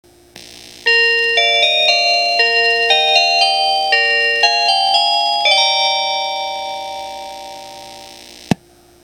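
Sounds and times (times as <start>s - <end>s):
KiHa 40 train chime in eastern Japan: 0.9s - 8.2s.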